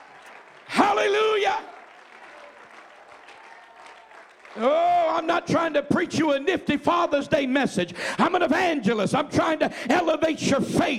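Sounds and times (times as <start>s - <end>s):
church congregation clapping hands: 0.0s - 5.8s
speech: 0.9s - 1.7s, 4.6s - 10.9s.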